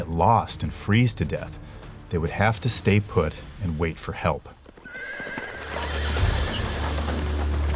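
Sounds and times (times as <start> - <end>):
speech: 0.2 - 4.6
hooves clip-clopping: 4.0 - 7.7
horse pulling a sleigh whinnying: 4.8 - 7.4.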